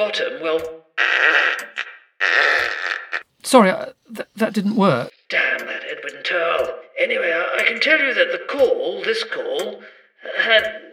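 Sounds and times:
speech: 0:00.0 - 0:02.8, 0:03.4 - 0:10.9
loud buzzy fart sound effect: 0:01.0 - 0:03.2.

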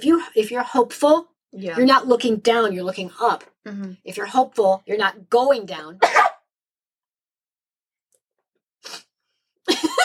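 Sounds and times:
speech: 0:00.0 - 0:06.3
sneeze: 0:06.0 - 0:06.4.

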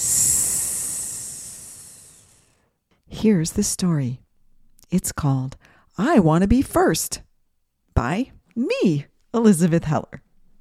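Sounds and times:
person exhaling with a long high hiss in a snake breath: 0:00.0 - 0:02.6
speech: 0:03.2 - 0:04.2, 0:04.9 - 0:07.3, 0:08.0 - 0:10.2.

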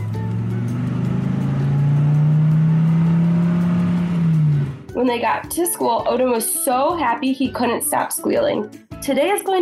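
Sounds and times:
car engine revving as the vehicle accelerates: 0:00.0 - 0:05.2
speech: 0:05.0 - 0:09.5.

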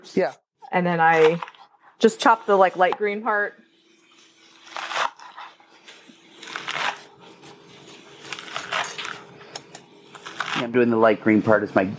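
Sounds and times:
speech: 0:00.0 - 0:03.6, 0:10.6 - 0:11.9
ginger being grated on a fine microplane: 0:04.6 - 0:09.2.

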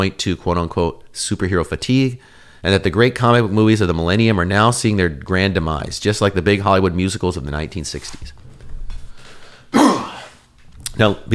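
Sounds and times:
speech: 0:00.0 - 0:08.4, 0:11.0 - 0:11.3
person with a cold coughing or clearing throat: 0:09.7 - 0:10.4.

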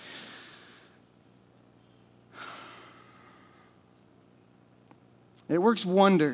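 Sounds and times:
deep breaths taken together during a worship gathering: 0:00.0 - 0:01.0, 0:01.8 - 0:04.0
speech: 0:05.5 - 0:06.3.

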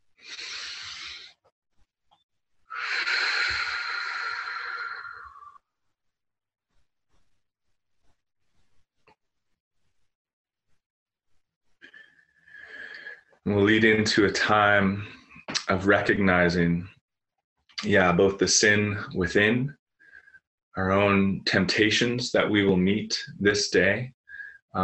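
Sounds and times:
group taking a deep breath together during prayer practice: 0:00.1 - 0:01.5, 0:02.7 - 0:05.6, 0:11.8 - 0:13.4, 0:20.0 - 0:20.4, 0:24.3 - 0:24.6
speech: 0:13.5 - 0:17.0, 0:17.8 - 0:19.8, 0:20.8 - 0:24.8.

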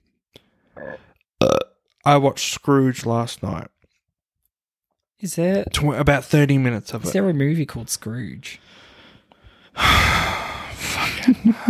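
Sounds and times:
throaty burp: 0:00.7 - 0:01.8
speech: 0:00.8 - 0:03.8, 0:05.2 - 0:08.8, 0:09.8 - 0:10.2.

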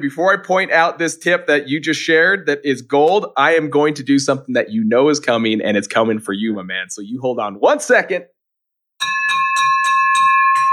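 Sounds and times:
speech: 0:00.0 - 0:08.3
handheld victory bell rung in celebration: 0:09.0 - 0:10.7.

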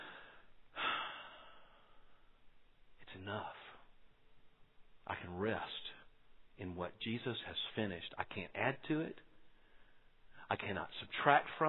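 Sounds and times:
deep breath: 0:00.0 - 0:02.4, 0:09.3 - 0:10.5
speech: 0:05.1 - 0:05.8, 0:06.6 - 0:09.3, 0:10.5 - 0:11.6.

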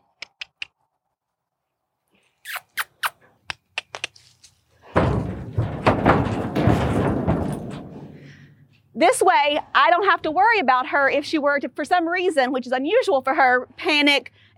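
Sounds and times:
metallic clanks and knocks of a horse trailer: 0:04.8 - 0:08.8
heavy horse trailer door slamming shut after a horse is loaded: 0:05.0 - 0:08.2
speech: 0:09.0 - 0:14.5.

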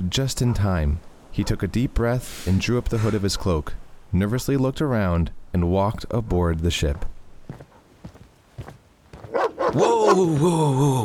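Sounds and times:
speech: 0:00.1 - 0:07.2, 0:09.7 - 0:11.0
wolfhounds barking loudly: 0:00.4 - 0:00.7, 0:03.0 - 0:03.6, 0:09.2 - 0:10.4
faint soft footsteps: 0:06.7 - 0:10.5
wolfhounds snarling with wavering pitch: 0:09.3 - 0:10.3.

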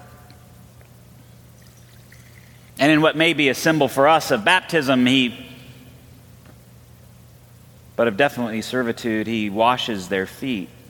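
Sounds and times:
low hum: 0:00.0 - 0:10.8
water pouring into a basin: 0:01.6 - 0:02.8
speech: 0:02.8 - 0:05.6, 0:08.0 - 0:10.8.

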